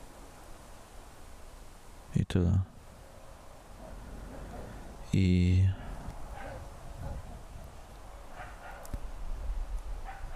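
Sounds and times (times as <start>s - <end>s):
speech: 2.3s - 2.7s, 5.2s - 5.8s
steady low rumble of wind: 2.7s - 10.3s
dogs barking: 3.8s - 5.0s, 5.7s - 9.0s, 10.0s - 10.3s.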